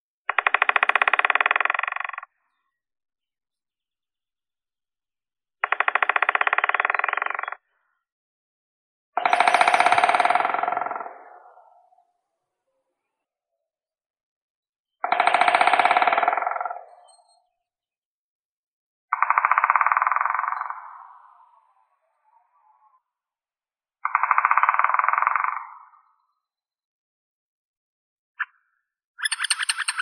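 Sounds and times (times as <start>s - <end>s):
white-backed woodpecker Dendrocopos leucotos: 0.3s - 2.3s, 5.6s - 7.6s, 9.2s - 11.0s, 15.0s - 17.3s, 19.2s - 20.9s, 24.1s - 25.7s, 29.2s - 29.9s.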